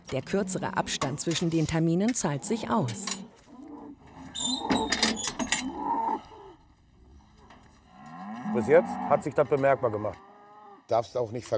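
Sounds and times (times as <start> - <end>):
speech: 0.1 - 3.2, 4.4 - 5.0, 8.6 - 10.3, 10.9 - 11.5
Angus bull bellowing while moved into a hoof-trimming stand: 2.4 - 10.9.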